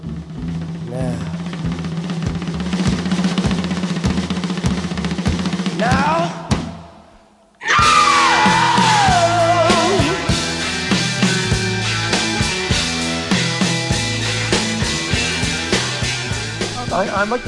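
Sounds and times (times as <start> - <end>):
loud full rock band: 0.0 - 6.8, 7.6 - 17.4
steady pounding drumbeat: 0.0 - 17.4
rock singer's long piercing scream sliding downward in pitch: 7.6 - 11.2
speech: 17.2 - 17.4.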